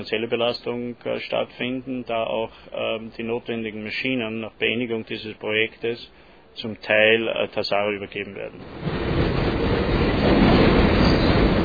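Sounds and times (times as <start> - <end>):
speech: 0.0 - 9.1
train rumbling past on railway tracks: 8.6 - 11.6.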